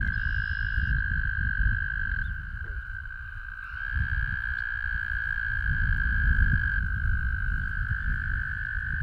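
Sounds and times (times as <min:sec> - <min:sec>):
American toad calling: 0:00.0 - 0:09.0.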